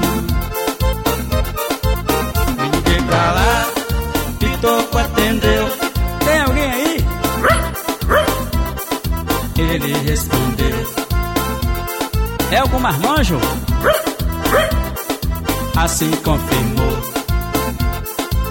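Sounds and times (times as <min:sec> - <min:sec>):
loud steady rhythmic music track: 0:00.0 - 0:18.4
dog barking and yipping: 0:07.3 - 0:08.7, 0:13.8 - 0:15.0
speech: 0:12.8 - 0:13.6, 0:15.8 - 0:17.1.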